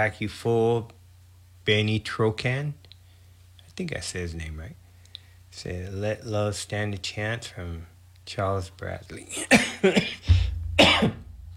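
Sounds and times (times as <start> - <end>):
speech: 0.0 - 1.0, 1.6 - 2.9, 3.8 - 4.8, 5.6 - 10.4
throat clearing: 9.4 - 11.2
harsh rough coughing: 9.4 - 11.3.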